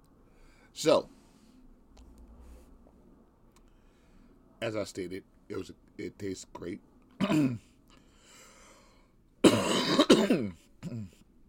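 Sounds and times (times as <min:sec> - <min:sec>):
speech: 0:00.8 - 0:01.2, 0:04.6 - 0:07.7, 0:10.2 - 0:11.2
person coughing: 0:07.2 - 0:07.6, 0:09.4 - 0:11.2
throat clearing: 0:09.4 - 0:11.2.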